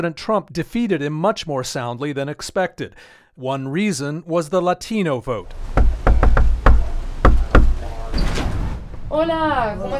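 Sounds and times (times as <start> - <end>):
speech: 0.0 - 6.0, 9.1 - 9.9
firm knocking on a door by campaign workers going door to door: 5.7 - 7.9.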